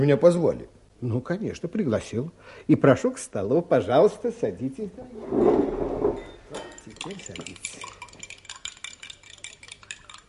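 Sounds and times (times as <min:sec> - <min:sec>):
speech: 0:00.0 - 0:05.8, 0:07.0 - 0:08.0
spoons clinking against cups while sugar is stirred into drinks: 0:06.2 - 0:10.2.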